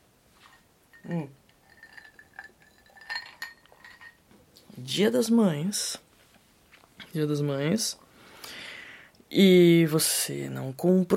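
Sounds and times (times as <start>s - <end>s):
glasses clinking while someone has a drink: 0.9s - 4.2s
speech: 1.1s - 1.4s, 5.0s - 6.0s, 7.1s - 8.0s, 9.3s - 11.1s.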